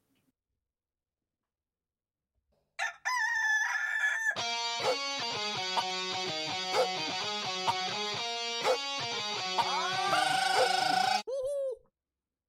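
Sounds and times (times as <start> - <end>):
rooster crowing: 2.8 - 4.4, 9.6 - 11.2
rhythmic music with a pulsing beat: 4.4 - 10.0.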